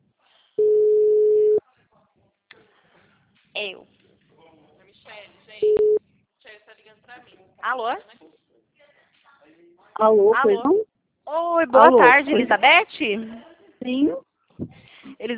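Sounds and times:
loud steady telephone tone: 0.6s - 1.6s, 5.6s - 6.0s
speech: 3.6s - 4.0s, 6.9s - 8.4s, 9.5s - 14.3s.

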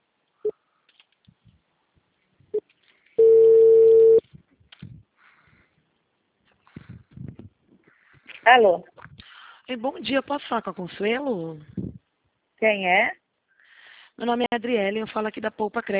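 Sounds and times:
telephone tone while a call is being dialed: 3.2s - 4.2s
speech: 8.5s - 8.9s, 9.7s - 11.8s, 12.6s - 13.2s, 14.2s - 15.9s.

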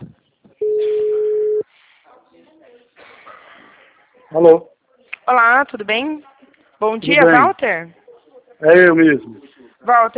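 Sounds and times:
steady phone tone of a call being placed: 0.6s - 1.6s
speech: 4.4s - 4.7s, 5.3s - 8.0s, 8.6s - 10.1s.

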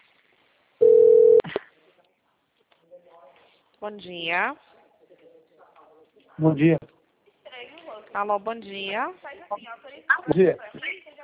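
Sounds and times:
telephone ringing tone on an outgoing call: 0.8s - 1.4s
speech: 3.8s - 4.7s, 6.4s - 7.0s, 8.2s - 10.9s.

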